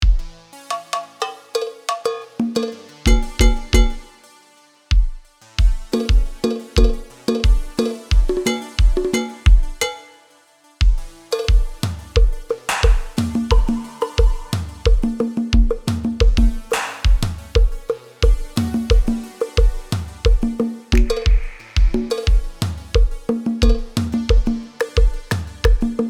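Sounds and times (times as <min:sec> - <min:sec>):
percussion effects: 0:00.0 - 0:04.1, 0:04.9 - 0:10.0, 0:10.8 - 0:26.0.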